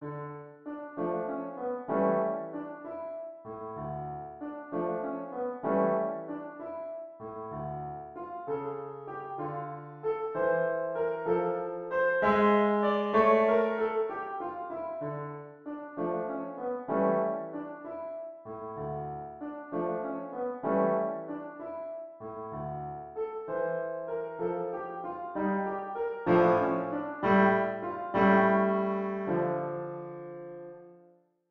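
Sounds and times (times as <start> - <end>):
piano piece: 0.0 - 31.2.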